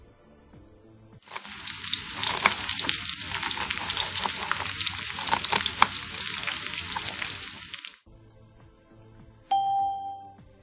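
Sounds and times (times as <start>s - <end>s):
food frying in a hot pan: 1.2s - 8.1s
two-tone doorbell chime: 9.5s - 10.4s.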